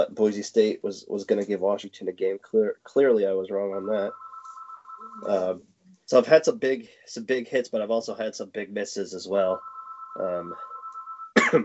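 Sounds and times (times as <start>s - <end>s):
speech: 0.0s - 4.2s, 5.2s - 10.7s
phone ringing with incoming call: 3.8s - 5.4s, 9.5s - 11.4s.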